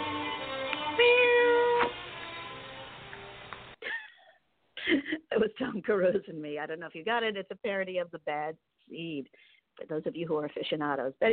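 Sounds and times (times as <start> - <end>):
cat meowing: 0.9 - 1.9
speech: 5.4 - 11.3.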